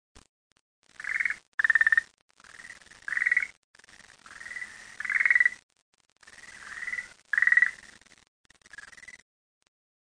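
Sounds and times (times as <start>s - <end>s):
frog giving pulsed trilling calls: 1.0s - 3.6s, 4.2s - 5.6s, 6.2s - 8.0s, 8.6s - 9.2s.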